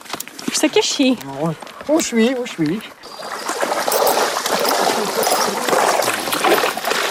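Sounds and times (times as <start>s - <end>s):
speech: 0.6s - 3.1s
horse splashing and thrashing in water while bathing to cool off: 1.5s - 7.0s.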